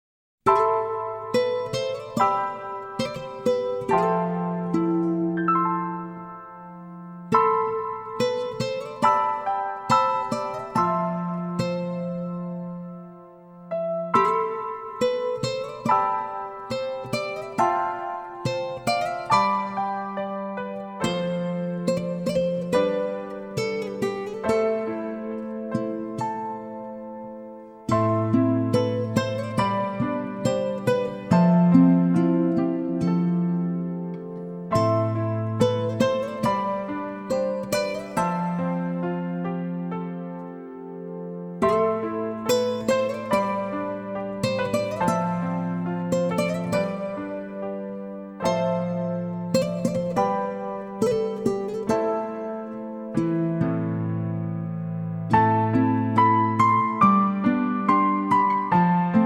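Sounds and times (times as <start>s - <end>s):
piano playing: 0.5s - 59.2s.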